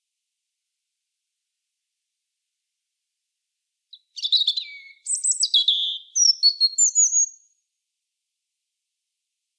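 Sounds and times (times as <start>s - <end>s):
European robin singing: 3.9s - 7.5s.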